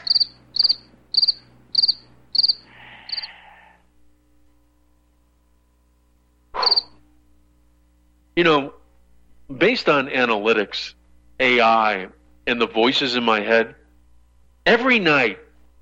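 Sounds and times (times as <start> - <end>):
cricket chirping: 0.0 - 3.5, 6.6 - 7.0
speech: 8.4 - 8.8, 9.5 - 13.8, 14.6 - 15.4.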